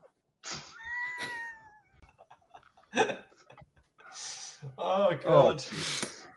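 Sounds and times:
cat meowing: 0:00.7 - 0:01.8
speech: 0:03.0 - 0:03.2, 0:04.8 - 0:06.1.

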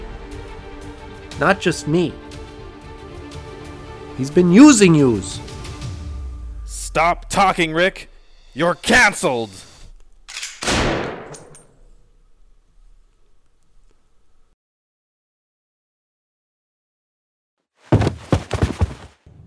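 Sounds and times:
speech: 0:01.4 - 0:02.2, 0:04.2 - 0:05.5, 0:06.9 - 0:09.7
gunshot: 0:10.3 - 0:11.6.

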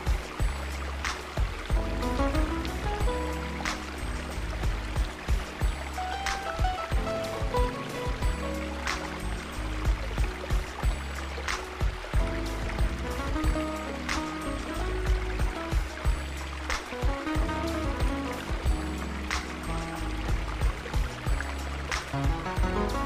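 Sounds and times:
river flowing near a campsite: 0:00.0 - 0:23.0
small splashes and gurgles of river water: 0:00.0 - 0:23.0.

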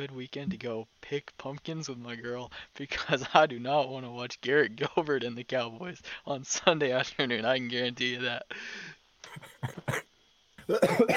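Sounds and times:
speech: 0:00.0 - 0:10.1, 0:10.7 - 0:11.1
wheezy laughter: 0:09.2 - 0:10.0
person coughing after laughing: 0:09.3 - 0:10.0, 0:10.6 - 0:11.1.

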